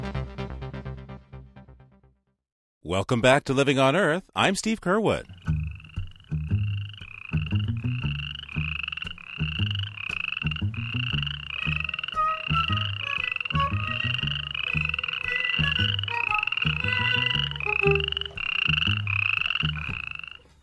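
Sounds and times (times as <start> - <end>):
speech: 2.9 - 5.3
dense chorus of frogs croaking: 5.1 - 20.6.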